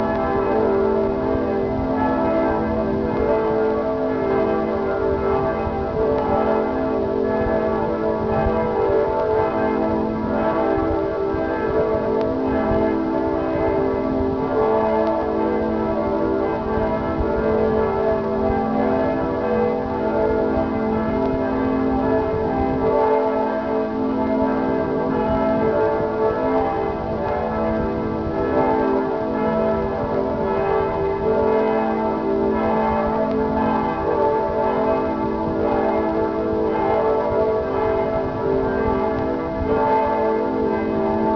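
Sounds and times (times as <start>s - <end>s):
bells of St Peter's Cathedral in Regensburg ringing: 0.0s - 41.3s.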